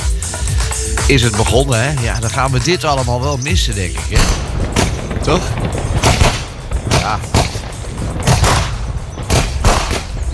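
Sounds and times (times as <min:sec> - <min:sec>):
low rumbling background: 0:00.0 - 0:10.3
speech: 0:01.1 - 0:06.0, 0:07.1 - 0:07.4
fireworks exploding: 0:04.1 - 0:10.3.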